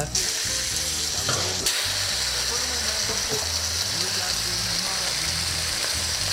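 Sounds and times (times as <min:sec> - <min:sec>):
entrecote steak frying in hot fat: 0:00.0 - 0:06.3.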